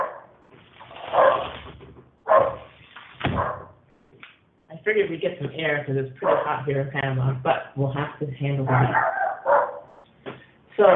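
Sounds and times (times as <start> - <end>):
dog barking outdoors: 0.0 - 0.3, 1.1 - 1.5, 2.2 - 2.7, 3.3 - 3.8, 6.2 - 6.6, 8.7 - 10.0
speech: 4.9 - 9.1, 10.8 - 10.9.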